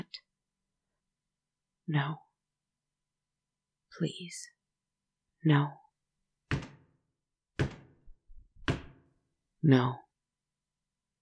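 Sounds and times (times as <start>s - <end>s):
speech: 1.9s - 2.2s, 4.0s - 4.6s, 5.4s - 5.8s, 9.6s - 10.0s
heavy knocking on a door: 6.4s - 7.0s, 7.6s - 9.1s.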